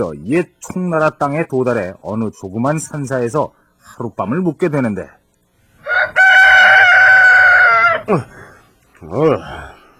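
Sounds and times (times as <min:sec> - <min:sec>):
speech: 0:00.0 - 0:05.2, 0:08.0 - 0:08.4, 0:09.0 - 0:09.7
rooster crowing at a small mountain temple: 0:05.8 - 0:08.2.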